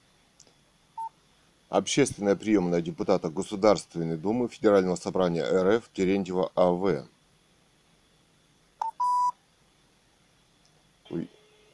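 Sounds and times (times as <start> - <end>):
speech: 1.7 - 7.1
telephone keypad DTMF tones dialing a number: 8.8 - 9.3
brief voice-like sound: 11.1 - 11.3.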